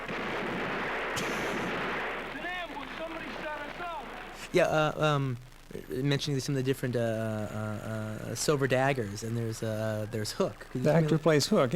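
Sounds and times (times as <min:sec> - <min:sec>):
automatic weapons gunfire in a film: 0:00.0 - 0:04.5
speech: 0:04.5 - 0:11.7.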